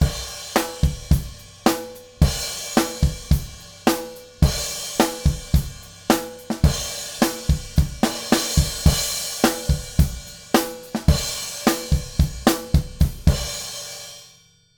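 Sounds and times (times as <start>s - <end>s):
acoustic drums: 0.0s - 14.2s.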